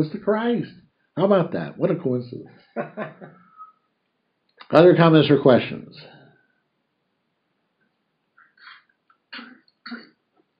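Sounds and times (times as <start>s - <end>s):
speech: 0.0s - 3.4s, 4.7s - 6.2s
laughter: 2.8s - 3.6s
person coughing: 9.4s - 10.2s
throat-clearing rasp: 9.4s - 10.2s.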